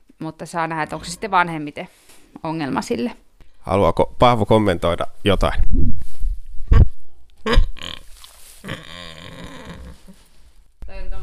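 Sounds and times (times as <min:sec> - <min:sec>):
speech: 0:00.2 - 0:06.0, 0:07.4 - 0:07.6
pig napping under a heat lamp grunting drowsily: 0:00.8 - 0:01.4, 0:07.4 - 0:08.0, 0:08.6 - 0:10.2.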